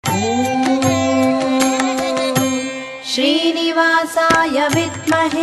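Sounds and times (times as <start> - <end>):
person chanting: 0.1 - 5.3.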